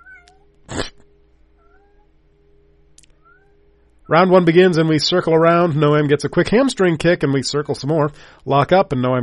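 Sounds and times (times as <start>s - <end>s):
cat meowing: 0.0s - 0.9s, 1.6s - 2.1s, 3.2s - 3.6s
faint hum: 0.0s - 9.2s
speech: 4.1s - 9.2s.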